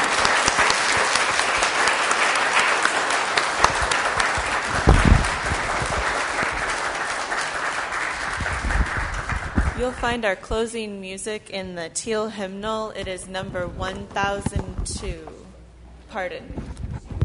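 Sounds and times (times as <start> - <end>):
audience applauding its guests: 0.0 - 10.0
speech: 9.9 - 15.4, 16.1 - 16.6.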